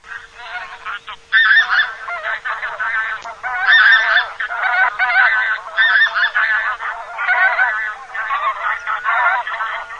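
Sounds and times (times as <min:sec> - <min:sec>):
granary goose honking: 0:00.0 - 0:09.9.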